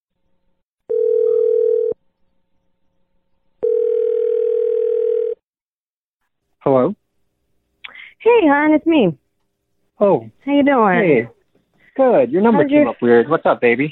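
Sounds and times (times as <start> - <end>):
long steady telephone ringing tones: 0.9 - 2.0, 3.7 - 5.4
speech: 8.4 - 9.2, 10.0 - 11.3, 12.0 - 13.8.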